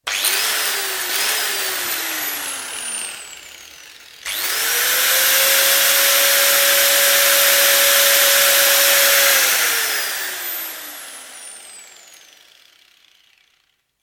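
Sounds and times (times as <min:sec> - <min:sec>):
electric hand grinder freewheeling: 0:00.0 - 0:14.0.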